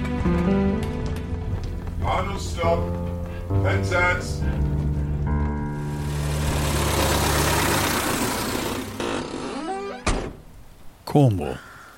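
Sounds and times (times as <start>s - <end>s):
express train pulling away from a station: 0.0s - 9.3s
speech: 2.2s - 5.0s, 11.1s - 11.7s.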